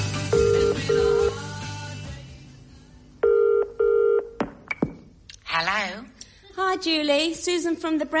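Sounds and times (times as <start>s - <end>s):
telephone ringing in classic double-burst pattern: 0.3s - 1.4s, 3.2s - 4.4s
speech: 6.8s - 8.1s.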